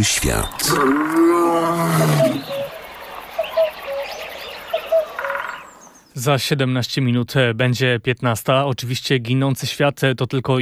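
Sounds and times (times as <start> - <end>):
speech: 0.0 - 2.6, 6.2 - 10.6
lion roaring: 0.0 - 2.9
faint bird chirps: 0.0 - 6.2.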